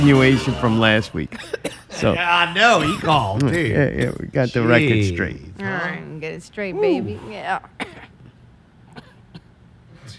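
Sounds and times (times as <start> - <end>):
speech: 0.0 - 8.1
low hum: 0.0 - 10.1
person coughing: 1.3 - 2.1, 2.8 - 4.2, 7.8 - 10.1.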